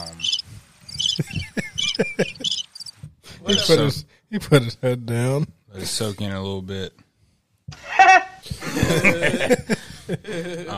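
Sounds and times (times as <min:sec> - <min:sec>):
cricket chirping: 0:00.0 - 0:03.6
laughter: 0:01.1 - 0:02.6, 0:07.8 - 0:10.7
speech: 0:02.0 - 0:02.4, 0:03.5 - 0:07.0, 0:08.9 - 0:10.7.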